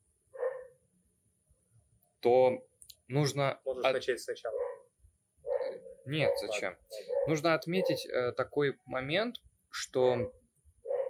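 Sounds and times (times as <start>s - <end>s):
dog barking: 0.4s - 0.8s, 4.5s - 8.1s, 10.8s - 11.0s
speech: 2.2s - 4.6s, 6.1s - 10.4s.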